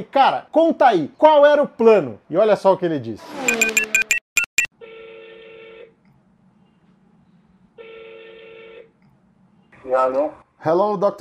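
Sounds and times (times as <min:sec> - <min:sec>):
speech: 0:00.0 - 0:03.8, 0:09.9 - 0:11.2
touch-tone dialing of an international call to Germany: 0:03.5 - 0:04.7.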